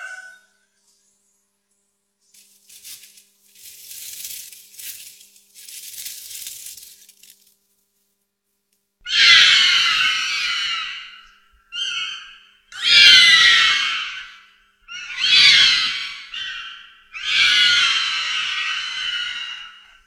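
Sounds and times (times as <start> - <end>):
fox crying in night forest thicket: 9.0 - 20.0.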